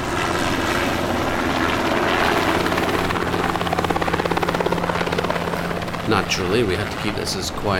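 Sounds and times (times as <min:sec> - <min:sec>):
helicopter flying overhead: 0:00.0 - 0:07.7
speech: 0:06.1 - 0:07.7.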